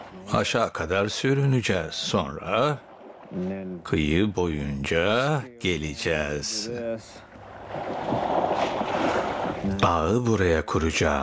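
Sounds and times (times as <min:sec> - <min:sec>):
water surging and splashing over people near a shore by deep water: 0:00.0 - 0:05.4, 0:07.2 - 0:10.0
speech: 0:00.3 - 0:08.2, 0:09.6 - 0:11.2.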